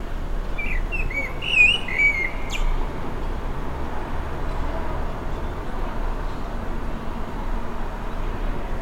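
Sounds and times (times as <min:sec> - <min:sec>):
low background noise: 0:00.0 - 0:08.8
blackbird singing: 0:00.6 - 0:02.7.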